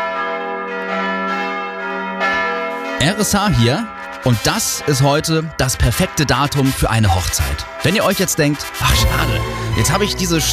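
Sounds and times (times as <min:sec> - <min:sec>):
church bells ringing loudly in a resonant peal: 0:00.0 - 0:10.5
speech: 0:03.0 - 0:10.5.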